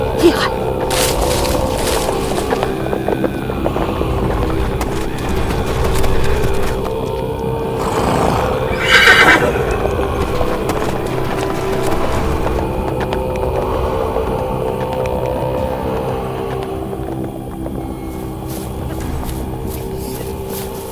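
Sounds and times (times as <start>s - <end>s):
horses hooves clip-clopping: 0.6s - 20.9s
loud shrill horse whinny: 7.8s - 9.9s.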